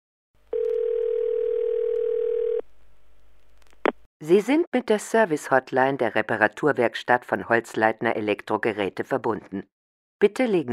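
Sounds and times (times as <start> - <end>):
telephone tone of an automated telephone information line: 0.5 - 2.6
speech: 4.2 - 10.7.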